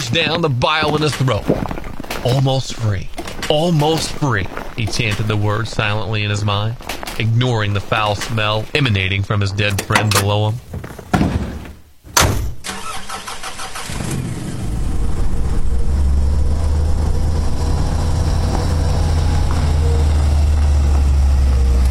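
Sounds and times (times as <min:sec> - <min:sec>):
car engine starting and rumbling while driving: 0:00.0 - 0:11.2, 0:11.8 - 0:21.8
speech: 0:00.1 - 0:10.7.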